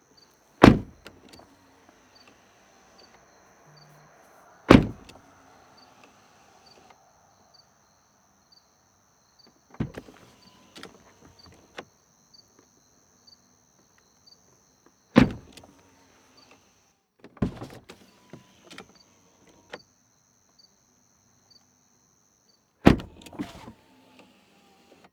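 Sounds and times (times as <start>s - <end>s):
BMW car doors opening and closing from interior: 0.1s - 7.3s, 9.6s - 12.0s, 15.1s - 19.8s, 22.8s - 25.1s.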